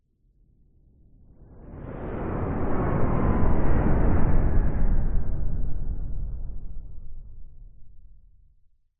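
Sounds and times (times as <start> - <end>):
large science fiction spacecraft flying low overhead: 1.4 - 6.7.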